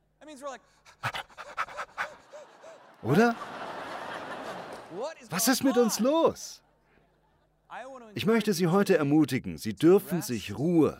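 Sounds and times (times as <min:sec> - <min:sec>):
speech: 0:00.3 - 0:03.6, 0:04.9 - 0:06.6, 0:07.7 - 0:10.9
person imitating rapid shallow panting breaths: 0:00.7 - 0:02.8
laughter: 0:01.2 - 0:07.6.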